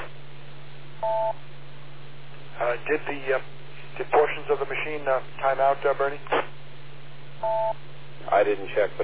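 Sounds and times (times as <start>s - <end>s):
dual-pitched electronic telephone beep tone: 1.0s - 1.4s, 7.4s - 7.8s
speech: 1.0s - 1.5s, 2.6s - 6.5s, 7.4s - 9.0s.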